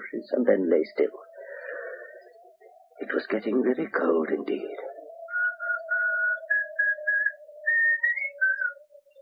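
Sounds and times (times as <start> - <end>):
speech: 0.2 - 1.3, 3.0 - 4.9
man whistling a simple tune: 5.3 - 8.8.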